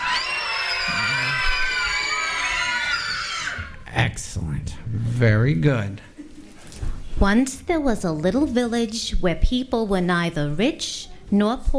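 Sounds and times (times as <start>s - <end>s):
crowd of children in an audience shrieking witch-like: 0.0s - 3.8s
speech: 4.0s - 6.1s, 7.2s - 11.7s.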